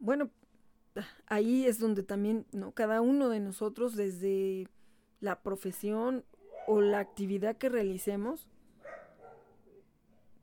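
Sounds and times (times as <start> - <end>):
low hum: 0.0 - 10.4
speech: 0.1 - 9.0
dogs barking outdoors: 6.4 - 7.2, 8.8 - 9.8.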